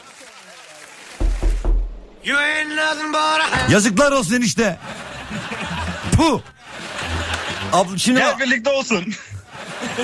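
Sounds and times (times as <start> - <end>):
dull knocks on a door: 1.2 - 2.0
speech: 2.2 - 5.0, 6.2 - 6.5, 7.7 - 9.3
laughter: 3.5 - 10.0.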